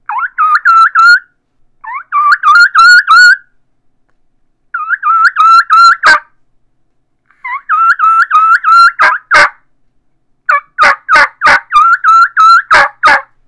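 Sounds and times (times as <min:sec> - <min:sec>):
turkey keekee runs: 0:00.1 - 0:03.4, 0:04.8 - 0:06.3, 0:07.3 - 0:09.6, 0:10.5 - 0:13.3.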